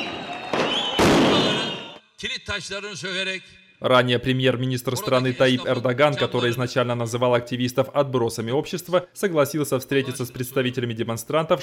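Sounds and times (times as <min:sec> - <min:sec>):
firework bursts during street protest: 0:00.0 - 0:02.0
speech: 0:02.2 - 0:11.6.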